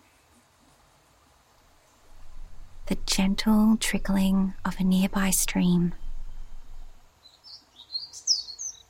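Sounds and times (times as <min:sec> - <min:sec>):
quiet rainforest background: 0:00.0 - 0:08.8
crickets chirping in a rainforest: 0:02.0 - 0:07.0
speech: 0:02.9 - 0:06.0.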